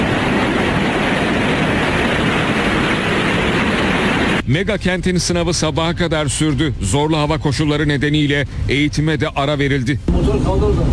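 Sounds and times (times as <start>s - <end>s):
heavy rainwater pouring from a metro station ceiling: 0.0s - 4.4s
speech: 4.5s - 10.9s.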